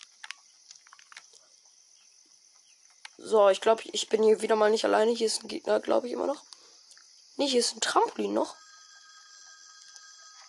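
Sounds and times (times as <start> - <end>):
speech: 3.2 - 6.5, 7.4 - 8.6
telephone ringing with an electronic trill: 7.9 - 10.4.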